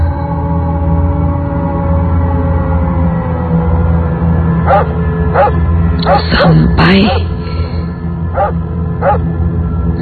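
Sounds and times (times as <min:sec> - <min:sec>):
steady low droning background: 0:00.0 - 0:09.9
dog howling and yelping: 0:04.7 - 0:06.2, 0:08.4 - 0:09.2
speech: 0:06.9 - 0:07.2.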